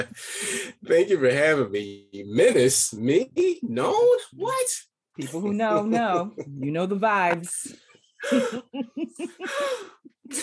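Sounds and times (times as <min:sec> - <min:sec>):
speech: 0:00.0 - 0:10.4
person gasping dramatically: 0:00.1 - 0:00.8, 0:08.2 - 0:08.7, 0:09.4 - 0:10.4
laughter: 0:05.2 - 0:07.0, 0:08.2 - 0:10.4.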